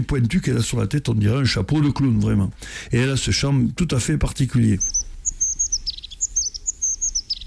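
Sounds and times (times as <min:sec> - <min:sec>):
speech: 0:00.0 - 0:05.1
crested tit calling in high trilling bursts: 0:04.7 - 0:07.4.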